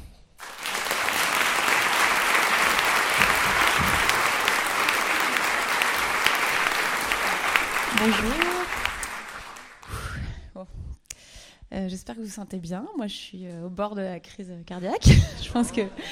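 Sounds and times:
large audience applauding loudly: 0:00.4 - 0:10.0
laughter: 0:00.6 - 0:09.7
speech: 0:08.0 - 0:08.5, 0:11.8 - 0:16.1.

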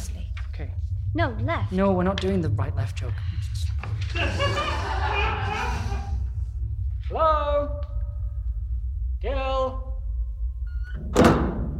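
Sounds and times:
low rumble: 0:00.0 - 0:11.7
speech: 0:00.6 - 0:03.5, 0:04.1 - 0:04.9, 0:07.1 - 0:07.9
laughter: 0:03.9 - 0:06.4
door creaking: 0:10.6 - 0:11.7.

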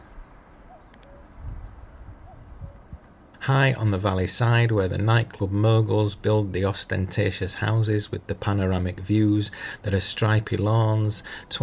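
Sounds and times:
cuckoo calling: 0:00.0 - 0:03.1
steady low outdoor rumble: 0:00.0 - 0:11.6
speech: 0:03.4 - 0:11.6.

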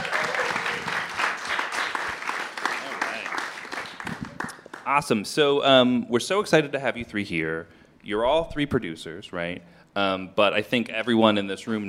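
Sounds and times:
audience applauding a panel: 0:00.0 - 0:04.9
speech: 0:04.9 - 0:11.8.

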